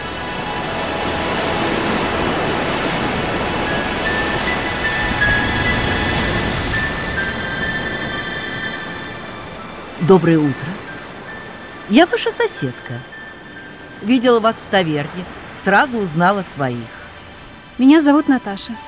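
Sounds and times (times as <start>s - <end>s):
sea waves crashing against rocks: 0.0s - 18.4s
speech: 10.1s - 10.8s, 11.9s - 13.1s, 14.0s - 17.0s, 17.8s - 18.8s.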